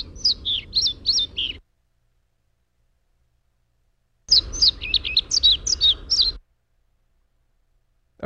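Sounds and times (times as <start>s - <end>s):
male pied flycatcher singing before mating: 0.0s - 1.6s, 4.3s - 6.4s
low rumble: 0.0s - 8.2s.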